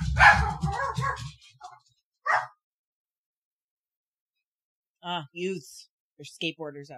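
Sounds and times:
dog barking and yipping: 0.1 - 2.6
speech: 5.0 - 6.9.

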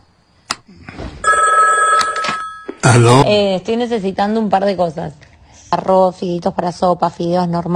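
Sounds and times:
telephone bell ringing: 1.2 - 3.0
speech: 2.9 - 7.7.

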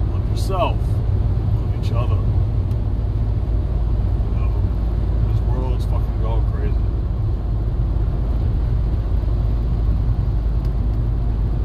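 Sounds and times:
truck engine rumble driving past: 0.0 - 11.6
speech: 1.8 - 2.3.

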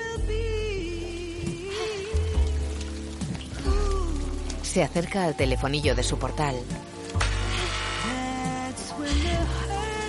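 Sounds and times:
steady rain falling on a street: 0.0 - 10.0
speech: 4.7 - 6.9.

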